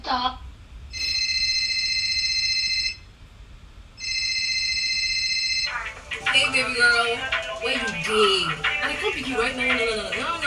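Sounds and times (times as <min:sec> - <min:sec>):
low hum: 0:00.0 - 0:10.4
phone ringtone ringing: 0:01.0 - 0:03.0, 0:04.0 - 0:09.8
speech: 0:06.6 - 0:10.4.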